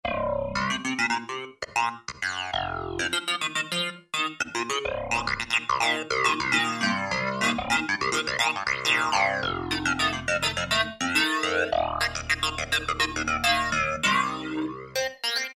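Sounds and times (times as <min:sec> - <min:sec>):
Alesis QS8 synthesizer Clavi tube factory preset: 0:00.0 - 0:15.5.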